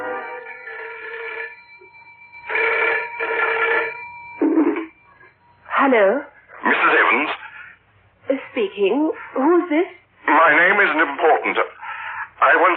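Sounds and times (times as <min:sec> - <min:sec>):
telephone ringing in loud buzzy bursts: 0:00.1 - 0:05.8
speech: 0:06.0 - 0:07.3, 0:08.6 - 0:11.8, 0:12.4 - 0:12.7.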